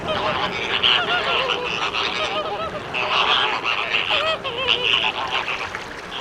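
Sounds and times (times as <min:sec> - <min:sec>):
American flamingo flock honking: 0:00.0 - 0:06.1.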